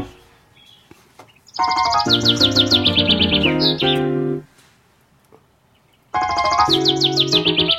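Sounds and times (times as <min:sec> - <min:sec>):
sustained low musical tones: 0:00.0 - 0:00.5, 0:01.6 - 0:04.5, 0:06.2 - 0:07.7
nightingale song with rapid rising chirps and trills: 0:00.0 - 0:04.6, 0:05.4 - 0:07.7.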